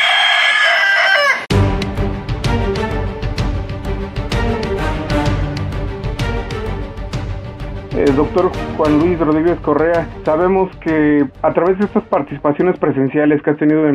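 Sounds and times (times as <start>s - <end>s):
rooster crowing: 0.0s - 1.5s
busy rhythmic music: 1.5s - 13.9s
speech: 8.1s - 13.9s.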